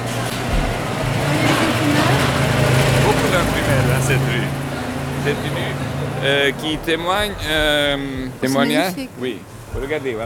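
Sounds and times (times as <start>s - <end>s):
car engine and road noise along a street: 0.0s - 10.2s
speech: 4.1s - 4.6s, 5.2s - 10.2s.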